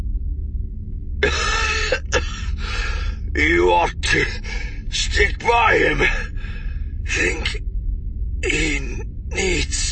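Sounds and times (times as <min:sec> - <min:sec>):
low rumbling: 0:00.0 - 0:09.9
person coughing harshly and forcefully: 0:01.2 - 0:02.8
speech: 0:03.4 - 0:06.3, 0:07.1 - 0:07.7, 0:08.4 - 0:09.9.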